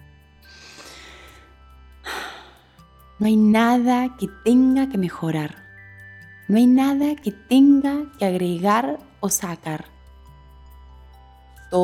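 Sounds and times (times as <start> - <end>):
deep breath in and out: 0.4 - 2.9
speech: 3.2 - 5.6, 6.5 - 9.9.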